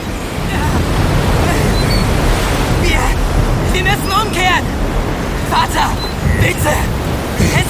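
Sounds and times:
waves surging on stormy open sea during a heavy thunderstorm: 0:00.0 - 0:07.6
wind roaring over stormy open sea during a heavy thunderstorm: 0:00.0 - 0:07.6.

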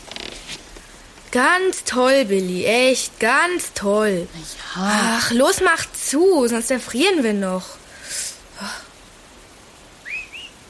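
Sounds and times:
rustling: 0:00.0 - 0:01.4
quiet outdoor background: 0:00.0 - 0:10.6
speech: 0:01.3 - 0:07.8
two-part rising and dipping whistle: 0:10.0 - 0:10.6.

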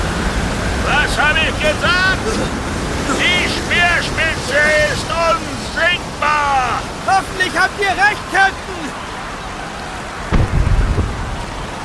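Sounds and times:
steady rain during a storm at sea aboard a ship: 0:00.0 - 0:11.8
laughter: 0:00.8 - 0:09.0
speech: 0:01.3 - 0:08.9
thunderclap rolling into a deep rumbling boom: 0:10.3 - 0:11.8.

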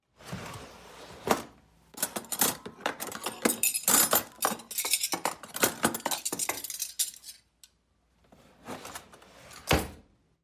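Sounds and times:
metal forks knives and spoons clinking as taken from a drawer: 0:02.0 - 0:07.5.

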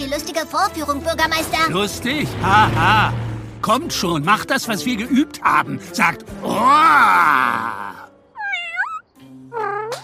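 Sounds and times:
speech: 0:00.0 - 0:08.0
rough noise: 0:01.2 - 0:04.1
kitten meowing: 0:08.4 - 0:10.0.

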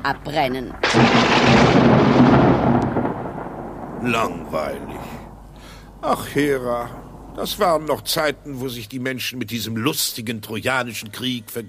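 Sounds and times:
speech: 0:00.0 - 0:02.3, 0:04.0 - 0:05.2, 0:06.0 - 0:11.6
thunder rumble: 0:00.0 - 0:09.0.

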